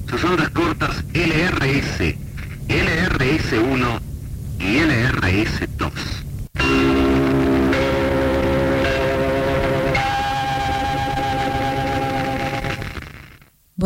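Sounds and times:
speech: 0.1 - 4.0, 4.6 - 6.2
radio station identification gong chimes: 6.6 - 13.4.

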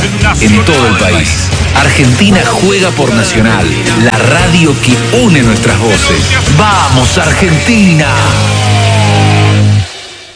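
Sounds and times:
speech: 0.3 - 8.7
car engine roaring: 8.0 - 10.3.

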